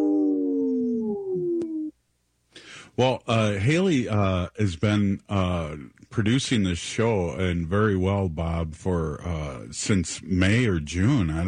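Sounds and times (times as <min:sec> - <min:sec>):
wolf howling: 0:00.0 - 0:01.9
speech: 0:03.0 - 0:11.4.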